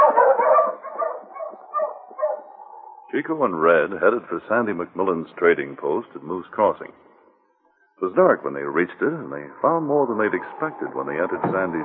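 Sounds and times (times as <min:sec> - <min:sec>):
sled dogs barking and yipping on a snowy trail at dusk: 0:00.0 - 0:03.1
speech: 0:03.1 - 0:07.1, 0:08.0 - 0:11.8.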